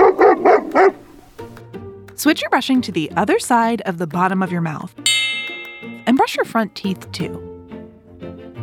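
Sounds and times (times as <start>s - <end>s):
dog barking: 0.0s - 1.2s
speech: 2.2s - 5.2s, 6.1s - 7.5s.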